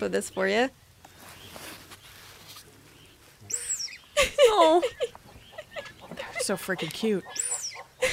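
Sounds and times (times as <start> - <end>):
speech: 0.0 - 0.8, 4.5 - 5.2, 6.4 - 7.5
dik-dik antelope alarm call: 3.5 - 4.2, 4.9 - 8.1
laughter: 4.2 - 7.2, 8.0 - 8.1.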